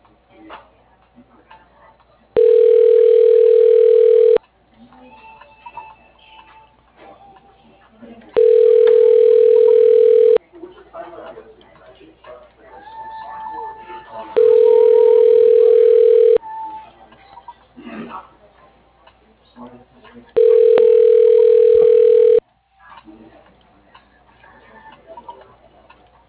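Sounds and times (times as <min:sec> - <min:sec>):
low noise: 0:00.0 - 0:26.2
ringback tone of an unanswered telephone call: 0:02.4 - 0:04.4, 0:08.4 - 0:10.4, 0:14.4 - 0:16.4, 0:20.4 - 0:22.4.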